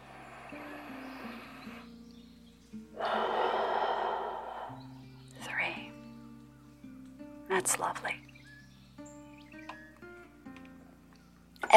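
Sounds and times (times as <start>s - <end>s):
deep breath in: 0.0s - 1.9s, 3.0s - 5.0s
soft steady musical backing: 0.0s - 11.7s
speech: 7.6s - 8.3s.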